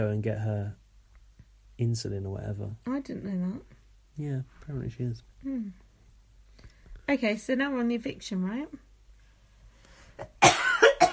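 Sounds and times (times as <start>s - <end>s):
speech: 0.0s - 0.8s, 1.8s - 5.8s, 7.1s - 8.9s, 10.2s - 10.4s
harsh raspy cough: 10.2s - 11.1s.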